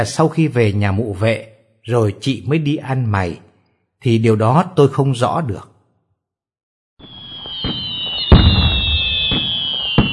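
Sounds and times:
speech: 0.0 - 5.7
ceremonial signal firecrackers banging during a household blessing ritual: 7.0 - 10.1
high steady whistling whine: 7.0 - 10.1.

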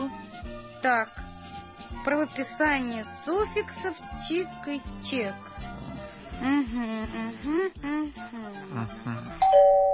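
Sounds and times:
speech: 0.8 - 1.2, 1.9 - 9.9
home doorbell chime: 9.4 - 9.9.

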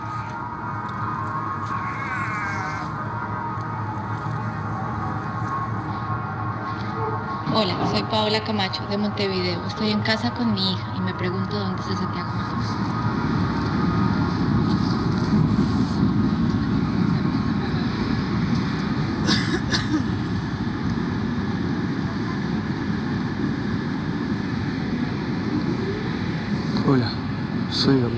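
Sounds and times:
subway train carriage rumbling while moving: 0.0 - 28.1
speech: 7.6 - 13.4.

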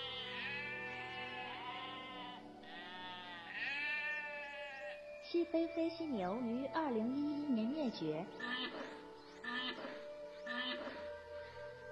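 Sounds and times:
Pyrenean ibex bleating: 0.0 - 5.0, 9.4 - 11.1
speech: 5.3 - 8.6.

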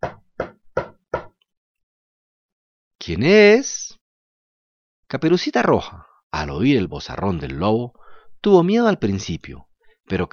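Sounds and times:
firm knocking on a door: 0.0 - 1.4
speech: 3.0 - 4.0, 5.1 - 10.3.

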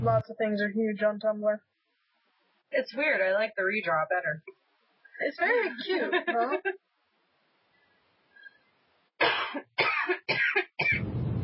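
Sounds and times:
speech: 0.0 - 1.8, 2.7 - 4.6, 5.2 - 6.8
laughter: 5.5 - 6.8
harsh coughing: 9.2 - 11.0.

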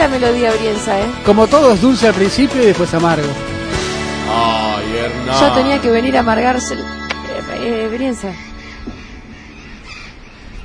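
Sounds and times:
speech: 0.1 - 3.5, 4.3 - 8.5
burrowing parrots squawking while circling overhead: 8.2 - 10.6.

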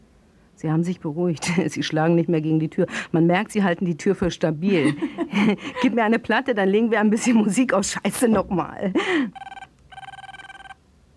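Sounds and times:
speech: 0.6 - 9.5
telephone bell ringing with rapid metallic trilling: 9.4 - 10.8.

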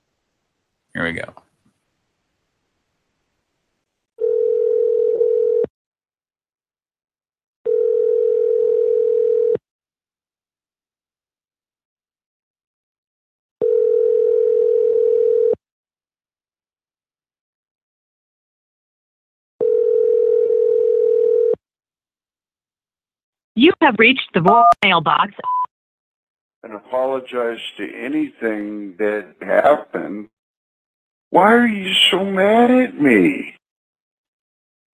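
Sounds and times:
speech: 1.0 - 1.4, 23.7 - 25.6, 26.6 - 30.4, 31.3 - 33.6
telephone ringback tone while placing a prank callback: 4.2 - 5.7, 7.7 - 9.6, 13.6 - 15.6, 19.6 - 21.6.

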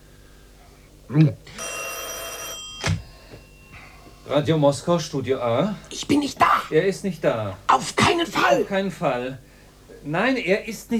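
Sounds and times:
speech: 1.1 - 1.7, 4.3 - 10.9
old telephone bell ringing in a Moscow flat: 1.5 - 4.6
short voiced sounds: 5.9 - 6.8, 7.7 - 8.7.

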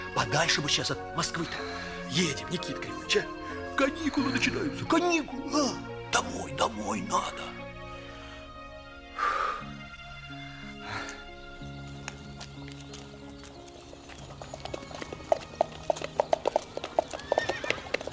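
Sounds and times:
speech: 0.2 - 7.6
hooves of two horses drawing a carriage clip-clopping: 11.8 - 18.1
horse whinny: 17.0 - 18.1.

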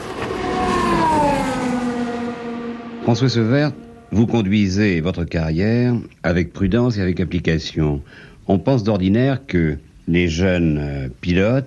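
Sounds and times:
Formula One racing car engine screaming at high rpm: 0.0 - 4.6
speech: 3.1 - 11.6.

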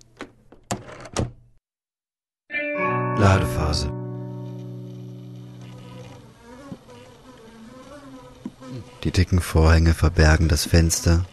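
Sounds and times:
door falling shut into its lock at a base: 0.7 - 1.4
speech: 3.2 - 4.0, 9.0 - 11.3.

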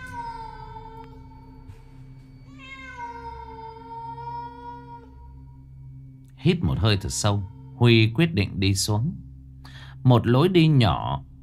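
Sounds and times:
cat meowing in an underground stairway: 0.0 - 1.3, 2.5 - 5.3
low hum: 0.0 - 11.4
speech: 6.4 - 9.3, 10.0 - 11.3.

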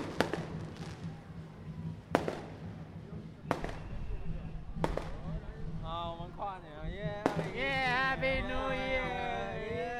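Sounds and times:
fireworks shell bursting at a New Year's celebration: 0.0 - 1.2, 2.1 - 2.8, 3.4 - 4.2, 4.8 - 5.3, 7.2 - 7.9
people talking: 4.1 - 9.9.

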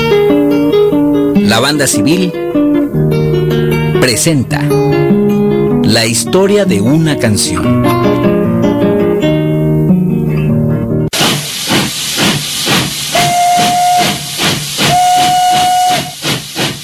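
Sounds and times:
music: 0.0 - 11.1
speech: 1.6 - 2.5, 4.0 - 5.2, 5.9 - 8.3
steam train chuffing with rhythmic hissing bursts: 11.1 - 16.8
steam train whistle blasts: 13.1 - 16.4.

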